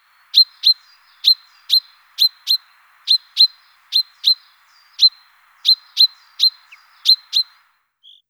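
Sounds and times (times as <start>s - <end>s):
chaffinch calling: 0.0s - 8.2s.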